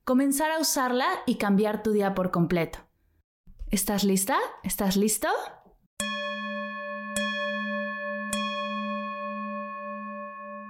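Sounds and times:
speech: 0.1s - 2.9s, 3.7s - 5.6s
mindfulness bell ringing: 6.0s - 10.6s.

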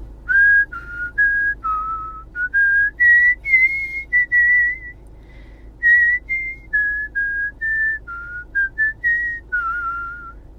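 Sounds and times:
person whistling a movie theme tune: 0.3s - 5.0s, 5.8s - 10.4s.

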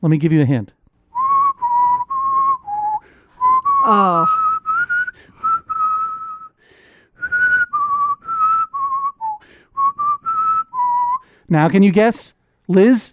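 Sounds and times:
speech: 0.0s - 0.8s, 3.8s - 4.4s, 11.5s - 13.1s
person whistling a melody from a film: 1.1s - 6.6s, 7.2s - 11.4s.

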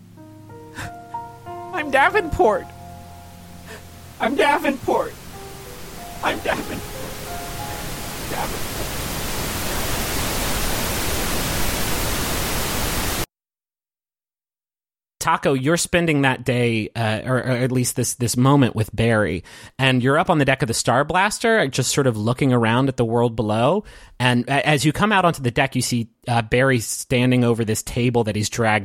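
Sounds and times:
speech: 1.8s - 2.8s, 4.2s - 5.2s, 6.2s - 7.5s, 8.3s - 8.9s, 15.2s - 28.8s
harsh radio static: 8.2s - 13.2s.

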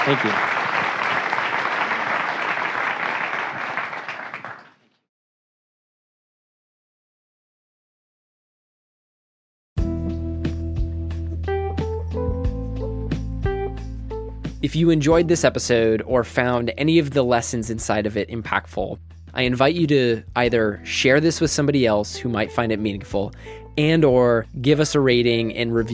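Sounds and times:
speech: 0.0s - 0.5s, 14.7s - 25.9s
crowd applause: 0.0s - 4.8s
instrumental music: 9.8s - 18.6s, 19.3s - 25.9s.

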